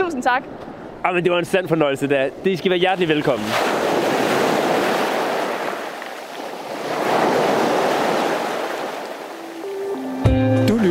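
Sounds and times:
speech: 0.1 - 3.9
waves rolling onto a beach in broad swells of surf: 1.6 - 10.2.

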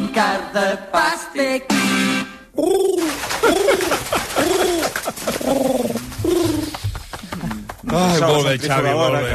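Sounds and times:
speech: 0.2 - 6.6, 7.9 - 9.3
pigeon cooing: 2.6 - 7.7
laughter: 3.0 - 9.2.

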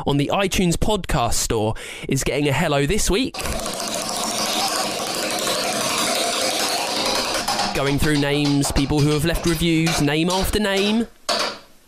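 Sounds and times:
speech: 0.0 - 4.0, 7.8 - 11.2
prize wheel spinning with ratcheting clicks: 3.4 - 7.8.

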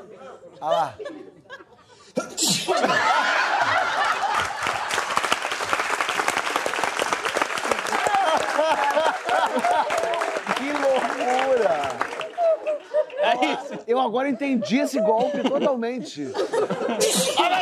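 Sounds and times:
crowd laughing: 0.0 - 5.3, 7.7 - 17.6
speech: 0.5 - 1.2, 2.2 - 3.3, 13.4 - 17.6
person sneezing: 2.2 - 2.9, 17.0 - 17.5
crowd applause: 3.9 - 12.8.

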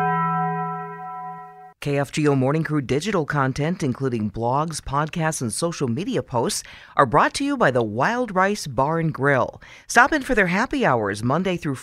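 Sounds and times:
single bell strike with clear metallic tone: 0.0 - 1.8
speech: 1.8 - 11.8.

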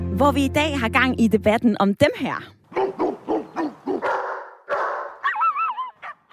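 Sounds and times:
speech: 0.2 - 2.6
dog barking: 2.7 - 6.3.

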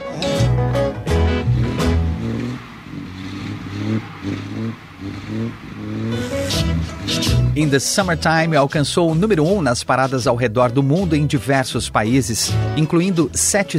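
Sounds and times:
sports car revving and driving past: 0.0 - 8.2
speech: 7.6 - 13.7.

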